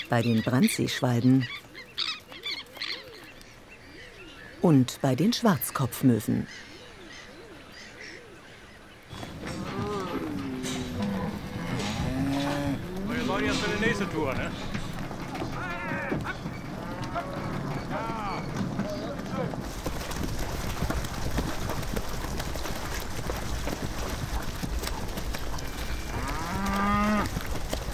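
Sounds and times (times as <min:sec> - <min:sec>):
steady rush of outdoor noise: 0:00.0 - 0:27.9
speech: 0:00.1 - 0:02.1, 0:04.6 - 0:06.7
cows mooing while driven at low tide onto the Halligen islets: 0:09.1 - 0:18.6, 0:25.6 - 0:27.4.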